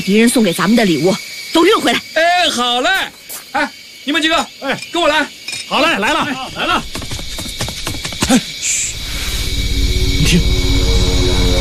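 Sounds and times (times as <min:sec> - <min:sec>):
speech: 0:00.0 - 0:07.0, 0:08.3 - 0:08.9, 0:10.2 - 0:10.6
Japanese enemy military aircraft engines droning: 0:08.9 - 0:11.5.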